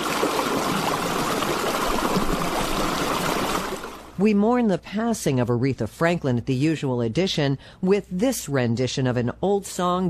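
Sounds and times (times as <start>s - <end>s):
water flowing through tidal marshland on the Isle of Wight: 0.0s - 4.2s
speech: 4.2s - 10.0s.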